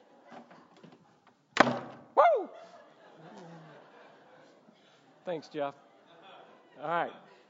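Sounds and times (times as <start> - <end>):
door slamming shut: 1.6 - 2.1
laughter: 2.3 - 7.4
speech: 5.3 - 5.9, 6.8 - 7.4.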